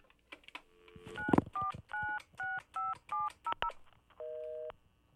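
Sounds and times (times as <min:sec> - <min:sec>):
telephone dialing in an office: 0:00.9 - 0:04.6.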